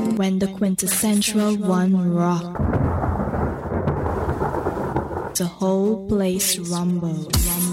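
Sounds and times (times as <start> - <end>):
speech: 0.2 - 2.8, 5.4 - 7.6
rolling thunder: 2.5 - 5.5.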